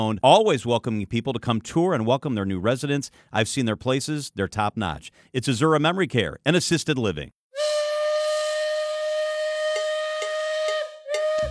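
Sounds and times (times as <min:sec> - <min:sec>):
speech: 0:00.0 - 0:07.4
steam train whistle blowing a long piercing note: 0:07.6 - 0:11.5.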